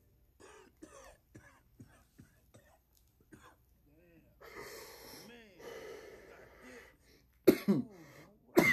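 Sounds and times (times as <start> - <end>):
person coughing after smoking: 0.4 - 3.6, 7.4 - 8.7
raspy wheezing: 4.4 - 8.4
strained breaths: 4.4 - 8.5.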